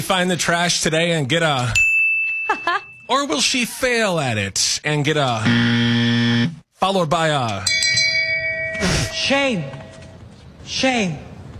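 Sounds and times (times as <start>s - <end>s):
speech: 0.0s - 1.8s, 2.5s - 8.0s, 8.8s - 9.8s, 10.7s - 11.3s
shame bell ringing: 1.8s - 3.2s, 7.6s - 10.2s.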